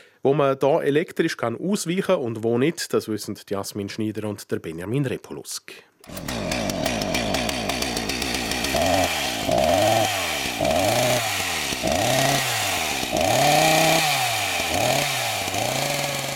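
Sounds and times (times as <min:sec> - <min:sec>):
speech: 0:00.2 - 0:06.9
petrol chainsaw revving and cutting wood: 0:06.0 - 0:16.3.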